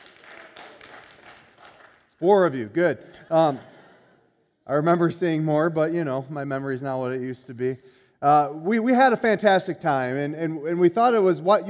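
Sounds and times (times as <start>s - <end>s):
small scattering of people clapping briefly: 0.0s - 2.2s
speech: 2.2s - 3.7s, 4.7s - 11.6s.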